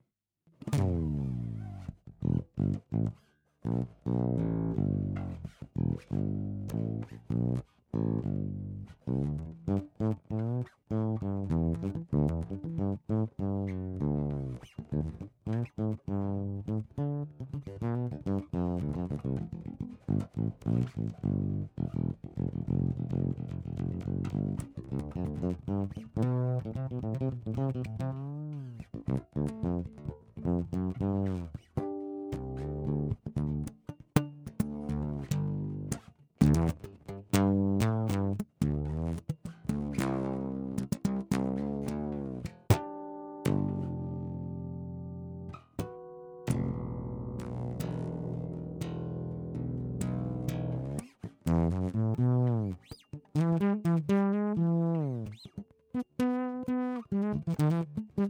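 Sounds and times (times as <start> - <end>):
fretless bass guitar with piezo pickup: 0.6 - 58.2.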